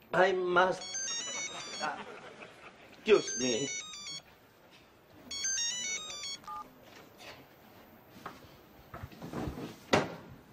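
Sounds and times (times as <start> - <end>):
speech: 0.1 - 1.1, 1.8 - 2.2, 3.1 - 3.9
short melodic electronic phone ringtone: 0.8 - 2.0, 3.1 - 4.3, 5.3 - 6.6
laughter: 1.0 - 3.7.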